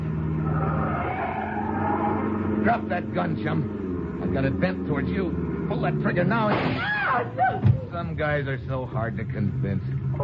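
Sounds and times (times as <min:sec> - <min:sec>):
car tires skidding and screeching under hard braking: 0:00.0 - 0:07.4
continuous roar of car engine: 0:00.0 - 0:10.2
speech: 0:02.6 - 0:10.0.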